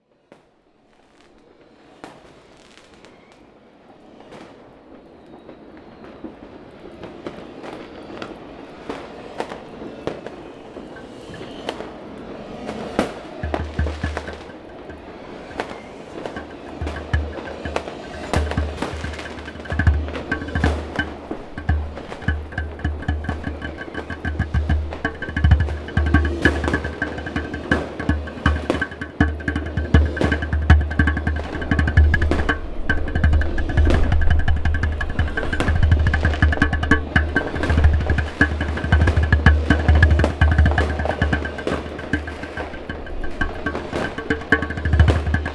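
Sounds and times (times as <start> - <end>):
djembe drumming: 12.5 - 45.5.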